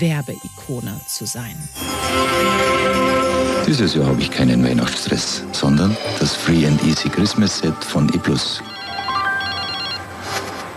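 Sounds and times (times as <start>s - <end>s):
speech: 0.0s - 8.8s
telephone ringing with an electronic ringtone of short high melodic beeps: 8.1s - 10.7s.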